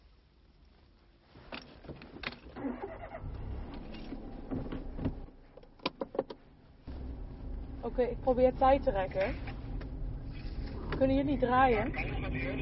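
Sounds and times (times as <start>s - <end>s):
approaching car engine drone: 2.6s - 12.6s
speech: 8.0s - 9.5s, 11.0s - 12.6s.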